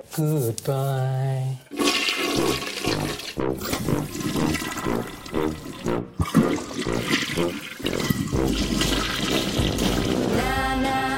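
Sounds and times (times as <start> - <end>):
speech: 0.1 - 1.8, 2.4 - 11.0
high-efficiency toilet flushing with swirling water: 1.6 - 10.4.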